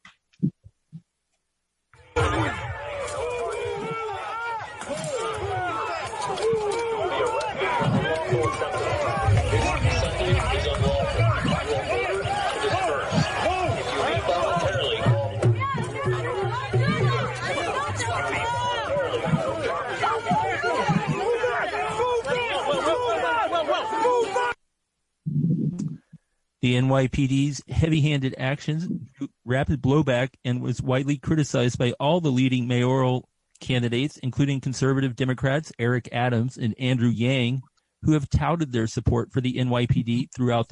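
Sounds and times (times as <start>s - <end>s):
agitated crowd shouting and chattering while resisting police clearing a park: 2.0s - 24.6s
speech: 26.6s - 40.7s.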